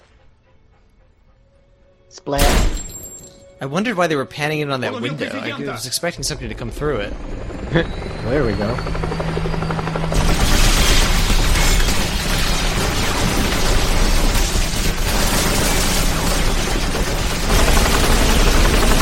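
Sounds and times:
speech: 0:02.1 - 0:02.9, 0:03.6 - 0:09.2
loud continuous video game gunfire: 0:10.1 - 0:19.0.

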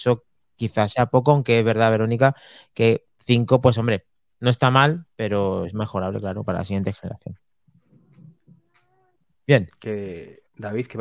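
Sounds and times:
speech: 0:00.0 - 0:07.4, 0:09.5 - 0:10.9
pet cat meowing: 0:08.5 - 0:09.3.

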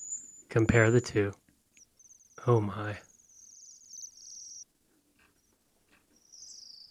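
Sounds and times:
faint Bohemian waxwing chirps: 0:00.0 - 0:01.0, 0:01.7 - 0:06.8
speech: 0:00.5 - 0:01.4, 0:02.4 - 0:03.1
Bohemian waxwings trilling calls: 0:01.8 - 0:04.6, 0:06.2 - 0:06.8.

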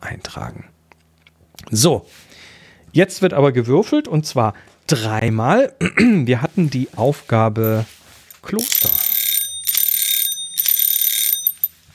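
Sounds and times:
speech: 0:00.2 - 0:00.8, 0:01.7 - 0:09.0
bell ringing: 0:08.5 - 0:11.8.

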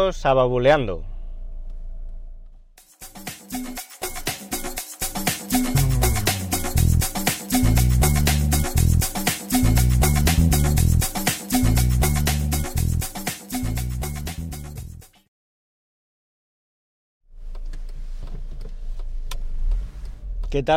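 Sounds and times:
speech: 0:00.0 - 0:01.1, 0:20.6 - 0:20.7
rhythmic music: 0:02.8 - 0:15.3
steady low rumble of a car interior: 0:17.3 - 0:20.7.

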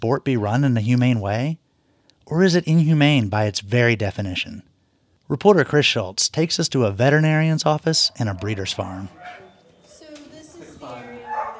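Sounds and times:
speech: 0:00.0 - 0:01.6, 0:02.3 - 0:04.7, 0:05.3 - 0:09.4
greyhounds barking and yipping in a cement block racetrack paddock: 0:07.4 - 0:11.5.

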